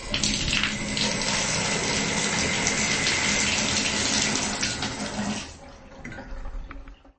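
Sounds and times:
person finishing washing under a shower: 0.0 - 5.6.

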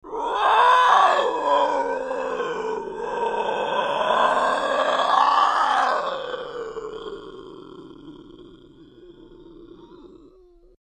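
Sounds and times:
person imitating a lion roar with voice: 0.0 - 10.8.

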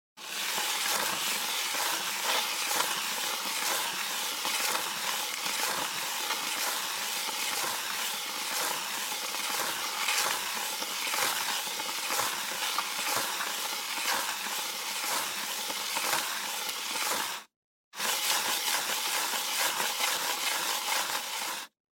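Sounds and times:
plastic box dragged on smooth hard cement: 0.2 - 21.8.

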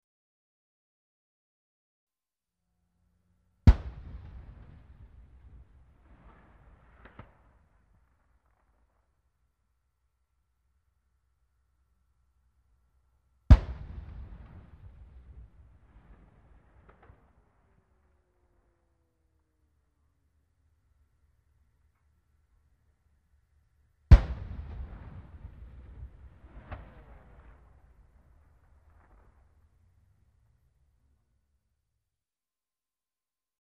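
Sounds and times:
distant tank gun firing: 3.6 - 9.0, 13.5 - 18.1, 24.1 - 30.2.

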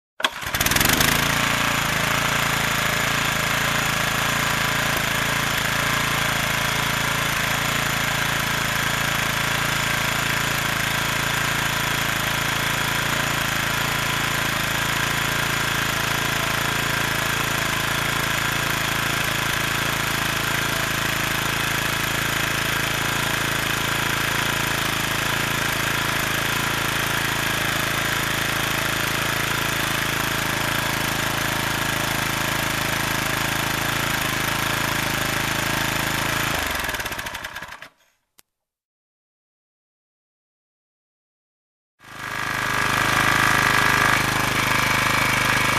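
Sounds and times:
hydraulic pump maintaining pressure head: 0.2 - 37.9, 42.1 - 45.7.

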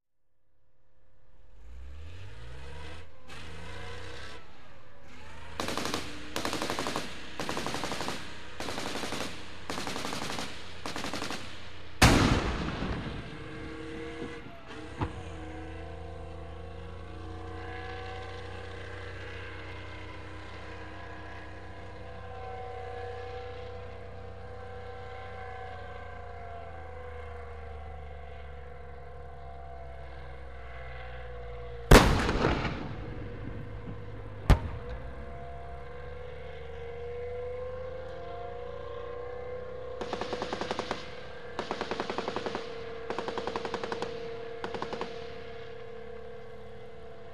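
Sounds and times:
tank moving: 1.4 - 47.3
machine gun fire: 5.6 - 13.6, 40.0 - 45.4
tank cannon shot: 5.6 - 13.9, 31.9 - 35.4.

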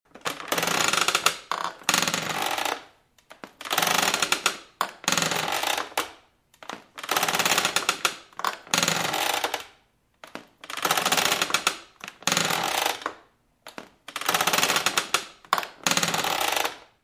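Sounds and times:
rocking chair slow heavy creaks on wooden floor: 0.1 - 16.9.

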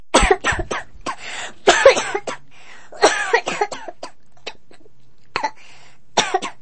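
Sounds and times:
child coughing strongly: 0.2 - 2.4, 3.0 - 4.6.

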